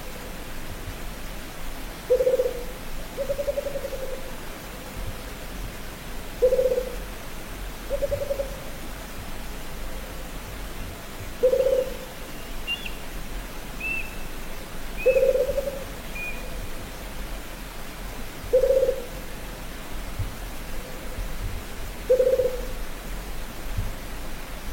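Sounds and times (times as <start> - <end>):
steady hiss: 0.0 - 24.7
Rufous-capped motmot hooting: 2.1 - 2.6, 3.2 - 4.2, 6.4 - 7.0, 7.9 - 8.6, 11.4 - 12.1, 12.7 - 13.0, 13.8 - 14.2, 15.0 - 16.6, 18.5 - 19.1, 22.1 - 22.8.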